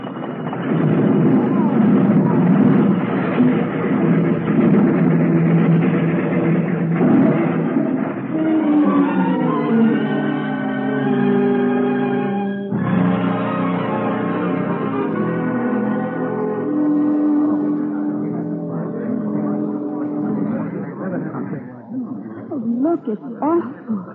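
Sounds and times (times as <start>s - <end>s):
train braking hard with loud rumble: 0.0s - 24.1s
sudden jolt of braking train: 0.3s - 8.4s.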